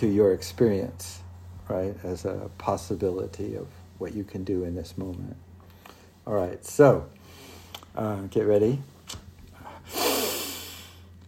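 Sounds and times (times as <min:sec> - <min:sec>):
speech: 0:00.0 - 0:05.4, 0:06.3 - 0:07.2, 0:08.0 - 0:09.2
deep inhale during a guided awareness exercise: 0:07.2 - 0:07.8, 0:09.5 - 0:11.1.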